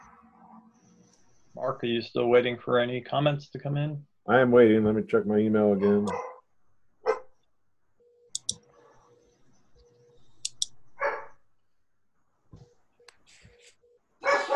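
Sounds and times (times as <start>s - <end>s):
speech: 1.6s - 6.3s
dog barking: 5.8s - 6.4s, 7.0s - 7.3s, 11.0s - 11.4s, 14.2s - 14.5s.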